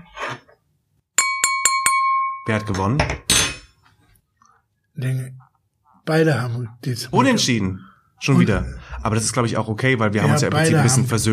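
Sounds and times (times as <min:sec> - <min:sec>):
champagne glass being struck: 0:01.2 - 0:02.8
speech: 0:02.5 - 0:03.3, 0:05.0 - 0:11.3.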